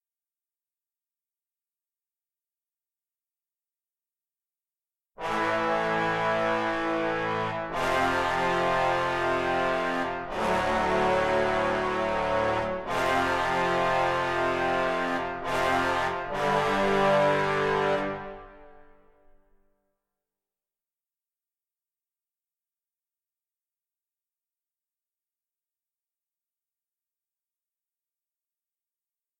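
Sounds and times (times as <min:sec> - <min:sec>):
trombones playing: 0:05.2 - 0:18.8.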